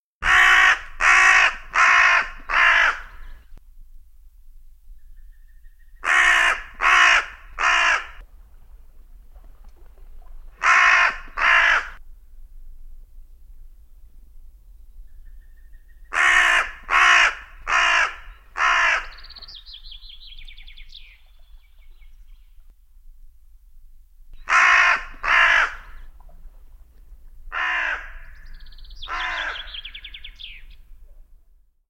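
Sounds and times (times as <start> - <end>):
crow calling in winter: 0.2 - 3.4, 6.0 - 8.2, 10.6 - 12.0, 16.1 - 19.8, 24.4 - 26.1, 27.5 - 30.7.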